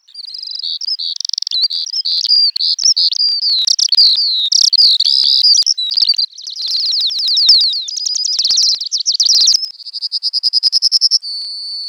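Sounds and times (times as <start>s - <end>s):
bird song with high warbled notes and trills: 0.0s - 11.8s
quick stutter of sharp repeated bird chips: 0.2s - 9.7s
speech: 4.0s - 5.0s.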